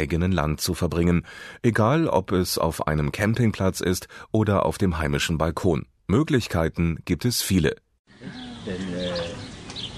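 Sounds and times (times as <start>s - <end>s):
speech: 0.0s - 8.8s
birds chirping at a campsite in the Siebengebirge: 8.1s - 9.9s.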